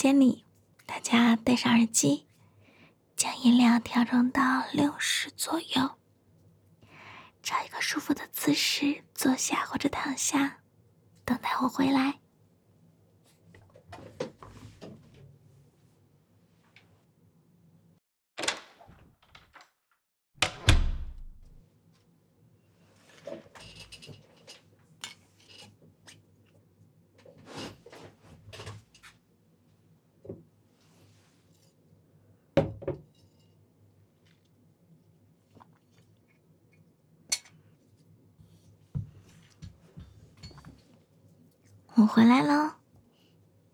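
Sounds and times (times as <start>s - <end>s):
speech: 0.0s - 2.3s, 3.2s - 6.0s, 7.4s - 10.6s, 11.3s - 12.2s, 42.1s - 42.8s
faint hum: 0.0s - 18.0s, 21.5s - 43.7s
door shutting: 20.4s - 21.6s.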